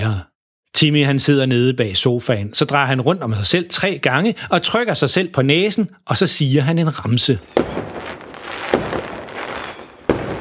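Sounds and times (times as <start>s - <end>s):
speech: 0.0s - 8.2s
fireworks crackling and fizzing inside a living room: 7.4s - 10.3s.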